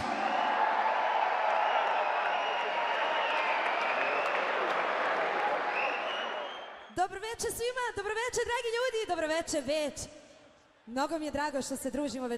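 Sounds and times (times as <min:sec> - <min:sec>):
audience applause greeting a singer at a tavern-style music evening: 0:00.0 - 0:06.9
speech: 0:07.0 - 0:10.2, 0:10.9 - 0:12.3.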